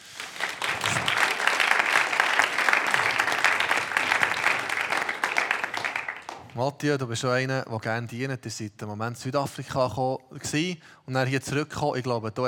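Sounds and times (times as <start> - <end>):
audience applause: 0.0 - 6.5
speech: 6.6 - 12.4.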